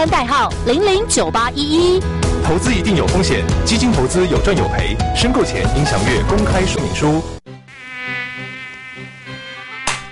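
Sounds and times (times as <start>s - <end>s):
speech: 0.0s - 7.4s
mosquito whining: 7.5s - 10.1s.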